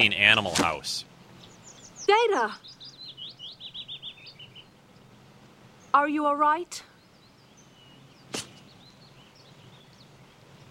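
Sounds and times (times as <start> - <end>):
speech: 0.0 - 1.1, 2.1 - 2.7, 6.0 - 6.9
faint birdsong: 0.0 - 10.6
arrow striking an android: 8.3 - 8.6.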